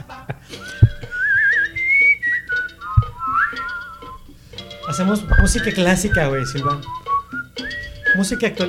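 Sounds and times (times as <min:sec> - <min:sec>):
person whistling a reggaeton melody: 0:00.5 - 0:08.6
dull low thumps: 0:00.7 - 0:02.0, 0:02.8 - 0:04.4, 0:05.2 - 0:08.2
speech: 0:05.0 - 0:07.0, 0:08.2 - 0:08.6.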